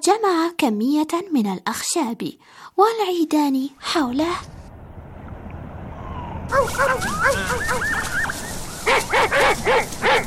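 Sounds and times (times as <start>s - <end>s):
speech: 0.1s - 4.6s, 6.5s - 10.2s
small dog whimpering: 6.1s - 8.3s
small dog barking: 6.5s - 10.2s.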